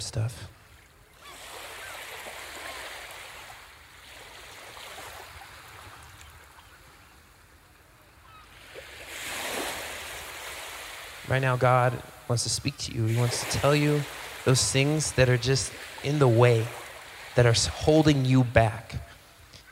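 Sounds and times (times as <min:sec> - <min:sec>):
speech: 0:00.0 - 0:00.5, 0:11.3 - 0:16.8, 0:17.4 - 0:19.1
ocean waves breaking on a beach: 0:00.5 - 0:19.7.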